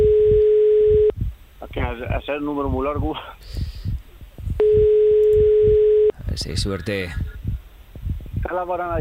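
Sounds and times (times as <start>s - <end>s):
rhythmic phone-line murmur: 0.0s - 1.1s, 4.6s - 6.1s
speech: 2.2s - 3.6s, 6.4s - 7.3s, 8.5s - 8.9s.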